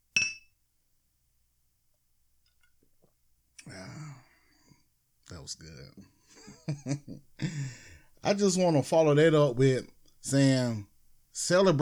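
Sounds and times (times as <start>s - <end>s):
glasses clinking in a toast: 0.2s - 0.5s
short vocal exhale or throat sound: 3.6s - 4.8s
speech: 5.3s - 11.8s
laughter: 6.3s - 7.7s.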